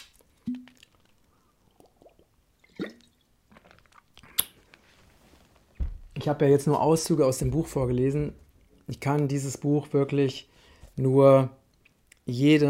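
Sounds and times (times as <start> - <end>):
wet mouth clicks of a person sipping a drink: 0.0 - 4.6
person swallowing a small sip of a drink: 1.7 - 4.6
speech: 6.2 - 11.6, 12.3 - 12.6.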